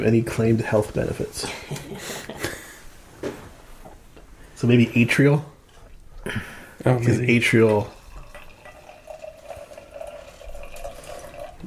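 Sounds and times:
speech: 0.0s - 1.7s, 4.6s - 5.5s, 6.3s - 8.0s
beer pouring into a glass: 7.0s - 11.6s.

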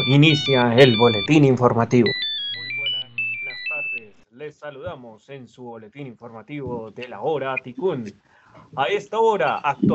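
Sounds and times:
mobile phone ringtone: 0.0s - 4.1s
speech: 0.1s - 2.2s, 4.5s - 9.9s.

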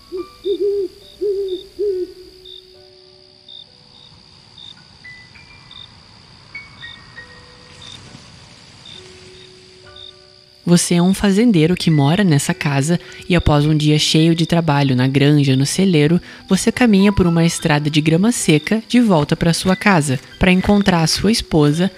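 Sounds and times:
owl hooting: 0.0s - 2.5s
crickets chirping at night in the countryside: 0.0s - 21.9s
soft wind rushing through trees: 0.0s - 21.9s
speech: 10.7s - 21.9s.

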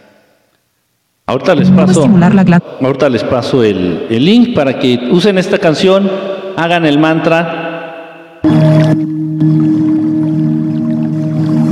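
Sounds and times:
speech: 1.3s - 7.6s, 8.4s - 9.7s
trickling water: 8.5s - 11.7s.

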